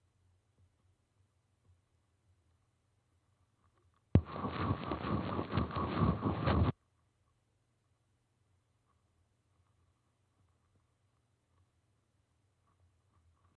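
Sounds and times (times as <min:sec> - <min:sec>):
microphone being tickled in a test: 0:04.2 - 0:06.7.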